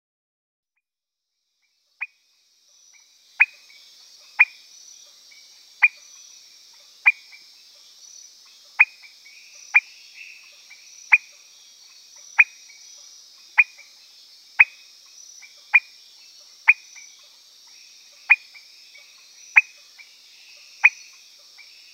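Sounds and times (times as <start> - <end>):
Leptodactylus petersii frog calling: 2.8 - 4.7, 5.3 - 7.6, 8.4 - 14.0, 14.6 - 21.9.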